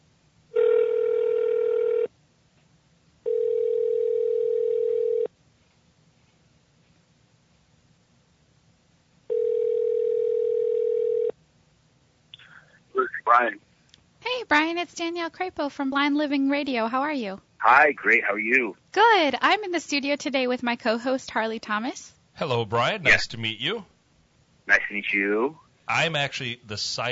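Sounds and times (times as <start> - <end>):
long steady telephone tones: 0.6 - 2.1, 3.3 - 5.3, 9.3 - 11.3
speech: 14.7 - 23.9, 24.7 - 27.0.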